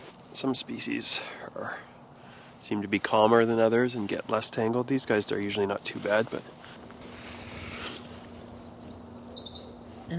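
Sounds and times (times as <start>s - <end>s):
speech: 0.4s - 2.0s, 2.6s - 6.6s
yellow-rumped warbler chirping: 7.3s - 10.1s.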